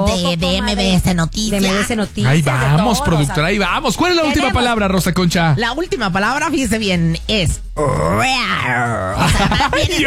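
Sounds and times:
speech: 0:00.2 - 0:10.0
person imitating a tiger growl: 0:07.8 - 0:09.4
laughter: 0:09.0 - 0:10.0.

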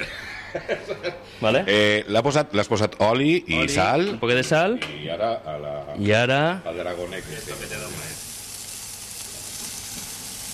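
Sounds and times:
laughter: 0:00.0 - 0:01.3
speech: 0:00.5 - 0:08.2
already-cooked octopus sizzling on a charcoal grill: 0:06.6 - 0:10.5.

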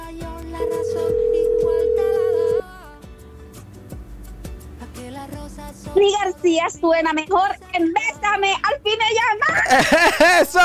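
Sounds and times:
rhythmic backing music: 0:00.0 - 0:10.6
telephone dial tone: 0:00.6 - 0:02.6
speech: 0:06.0 - 0:10.6
laughter: 0:09.5 - 0:10.6.

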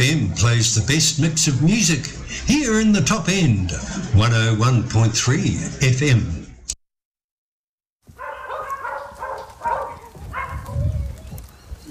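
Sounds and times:
speech: 0:00.0 - 0:06.4
dogs barking: 0:08.1 - 0:11.2.

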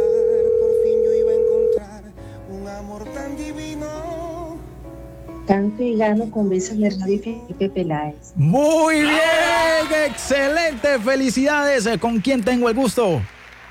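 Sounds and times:
telephone dial tone as a telephone is dialed to call a listener: 0:00.0 - 0:01.8
speech: 0:05.5 - 0:13.4.

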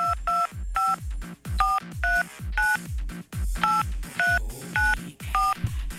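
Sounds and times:
telephone keypad dialing tones: 0:00.0 - 0:01.0, 0:01.6 - 0:02.8, 0:03.6 - 0:05.6
thumping rhythmic beat: 0:00.0 - 0:05.9.

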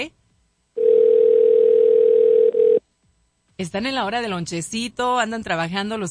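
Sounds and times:
ringback tone of an outgoing telephone call: 0:00.8 - 0:02.8
speech: 0:03.6 - 0:06.0.

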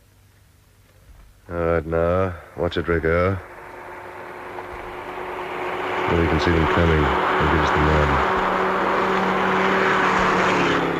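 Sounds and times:
speech: 0:01.5 - 0:03.5, 0:06.1 - 0:08.4
car driving past with engine and road noise: 0:02.9 - 0:10.9.

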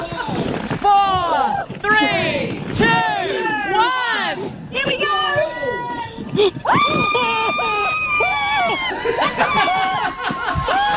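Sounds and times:
excited voices and commotion: 0:00.0 - 0:10.9
speech: 0:02.7 - 0:03.4
laughter: 0:06.4 - 0:10.9
woman screaming while being dropped: 0:06.7 - 0:10.0.

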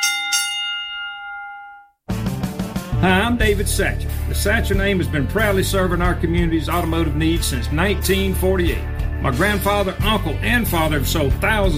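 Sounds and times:
bell ringing: 0:00.0 - 0:02.0
speech: 0:03.0 - 0:11.7.

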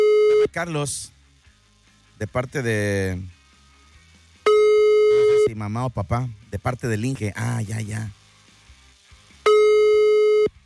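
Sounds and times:
telephone line tone while placing a call: 0:00.0 - 0:00.5, 0:04.5 - 0:05.5, 0:09.5 - 0:10.6
speech: 0:00.5 - 0:01.2, 0:02.2 - 0:03.4, 0:05.5 - 0:08.2.

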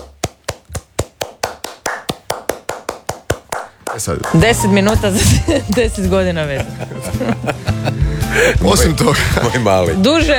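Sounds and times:
hands clapping in a slow steady rhythm: 0:00.0 - 0:06.2
laughter: 0:04.0 - 0:10.3
speech: 0:04.0 - 0:10.3.

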